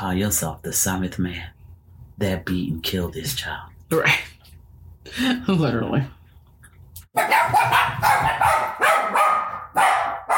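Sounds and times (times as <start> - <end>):
speech: 0.0 - 1.6, 2.2 - 4.3, 5.0 - 6.2, 7.2 - 8.5
dogs barking: 7.1 - 10.3.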